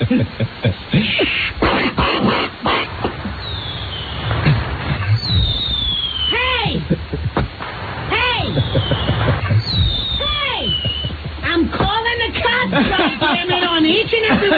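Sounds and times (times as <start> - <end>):
laughter: 0.0 - 1.6, 6.6 - 7.7, 8.4 - 14.5
sharp bangs and crackles: 1.6 - 6.3, 7.2 - 12.1
high whistling tones sliding downward: 3.4 - 6.6, 8.4 - 11.3.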